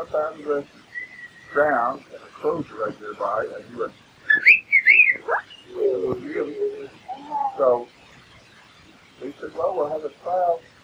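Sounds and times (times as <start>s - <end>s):
speech: 0.0s - 0.9s, 1.5s - 8.0s, 9.2s - 10.7s
person whistling to imitate a groundhog call: 1.0s - 1.4s.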